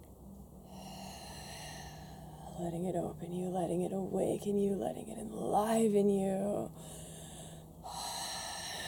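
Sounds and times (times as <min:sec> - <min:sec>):
slow deep breathing: 0:00.6 - 0:02.6, 0:06.7 - 0:08.8
speech: 0:02.6 - 0:07.0.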